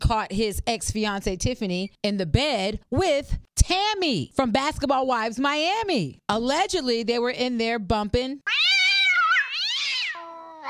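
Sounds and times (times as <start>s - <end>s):
speech: 0.1s - 8.8s
cat meowing: 8.5s - 10.6s.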